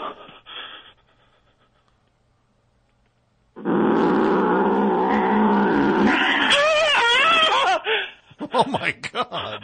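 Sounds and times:
cat snarling and growling: 3.6s - 7.2s
cat shrill yowls: 6.0s - 7.8s
laughter: 7.3s - 9.6s.

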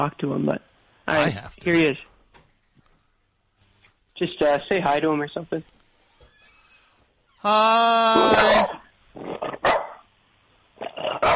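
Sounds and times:
speech: 0.0s - 2.1s, 4.2s - 5.8s, 7.4s - 9.8s, 10.8s - 11.3s
dog barking: 9.6s - 10.0s, 11.2s - 11.3s.

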